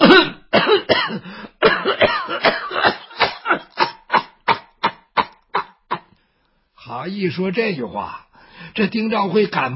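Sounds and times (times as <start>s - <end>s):
storyteller imitating an elderly woman coughing: 0.0s - 6.1s
speech: 7.0s - 9.7s.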